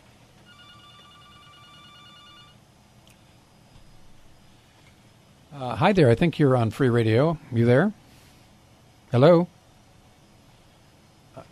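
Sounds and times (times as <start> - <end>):
low hiss: 0.0 - 11.5
telephone ringing with an incoming call: 0.4 - 2.6
speech: 5.6 - 8.0, 9.1 - 9.6.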